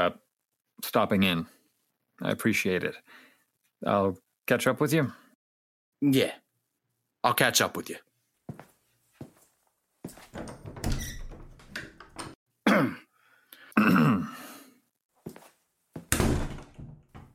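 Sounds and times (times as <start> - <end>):
speech: 0.0 - 0.2, 0.8 - 1.6, 2.2 - 3.2, 3.8 - 5.2, 6.0 - 6.4, 7.2 - 8.6
door clicks and knocks: 10.3 - 12.4, 16.1 - 17.3.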